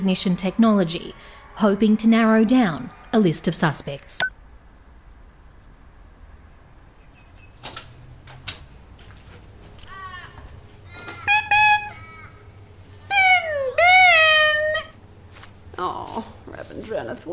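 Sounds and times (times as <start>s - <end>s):
speech: 0.0s - 4.3s
low hum: 0.0s - 17.3s
pet bird squawking calls: 10.9s - 12.4s.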